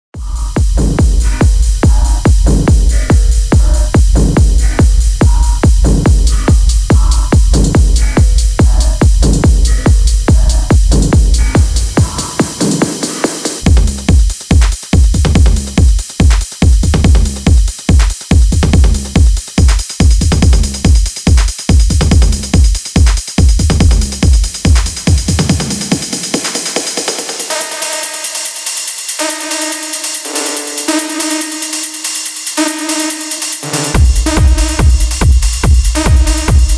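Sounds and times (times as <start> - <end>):
underground techno music: 0.1 - 36.7.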